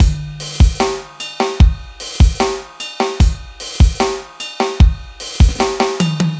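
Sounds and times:
clear drums: 0:00.0 - 0:06.3.

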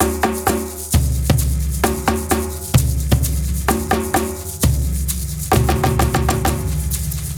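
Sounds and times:
big Latin percussion: 0:00.0 - 0:07.3.

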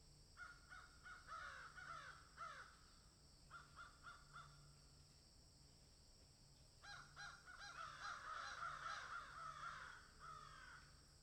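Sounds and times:
crow cawing rapidly: 0:00.4 - 0:02.8, 0:06.8 - 0:10.9.

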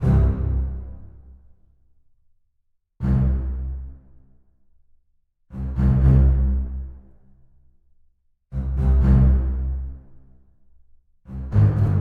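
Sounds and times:
bass string: 0:00.0 - 0:01.5, 0:03.0 - 0:04.3, 0:05.5 - 0:07.3, 0:08.5 - 0:10.4, 0:11.3 - 0:11.9.

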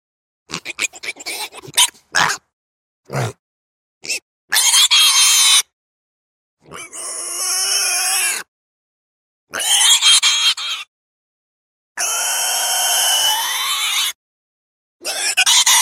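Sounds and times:
pig squealing: 0:00.5 - 0:02.5, 0:03.1 - 0:03.4, 0:04.0 - 0:05.7, 0:06.6 - 0:08.5, 0:09.5 - 0:10.9, 0:12.0 - 0:14.2, 0:15.0 - 0:15.7.

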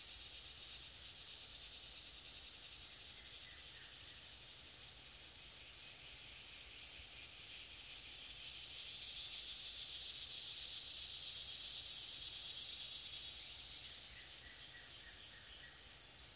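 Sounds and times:
cicada drone: 0:00.0 - 0:16.3.

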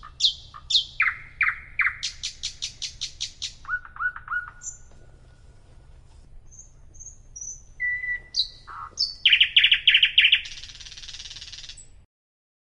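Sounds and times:
nightingale singing: 0:00.0 - 0:05.5, 0:06.4 - 0:12.0
faint low hum: 0:00.0 - 0:12.0.

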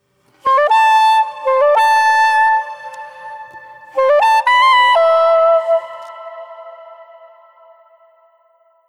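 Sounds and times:
saxophone solo: 0:00.4 - 0:07.4.

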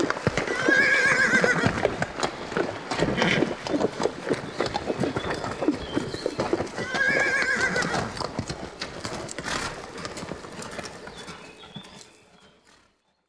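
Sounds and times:
horse clip-clop hoofbeats: 0:00.0 - 0:13.2
horse whinnying: 0:00.3 - 0:02.0, 0:03.0 - 0:03.6, 0:06.6 - 0:08.3.

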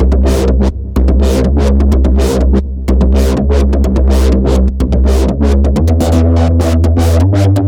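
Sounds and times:
bass: 0:00.0 - 0:07.6.

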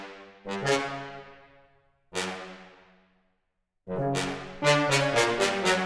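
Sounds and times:
trombones playing staccato: 0:00.5 - 0:01.2, 0:03.9 - 0:05.8.

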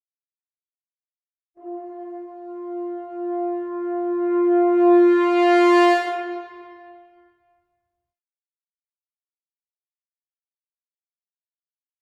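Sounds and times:
horn swell: 0:01.6 - 0:07.5.

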